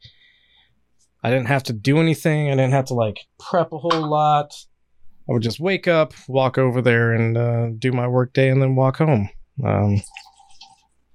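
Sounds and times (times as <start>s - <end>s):
speech: 1.2s - 4.7s, 5.3s - 10.3s
liquid pouring into a glass: 10.0s - 10.9s.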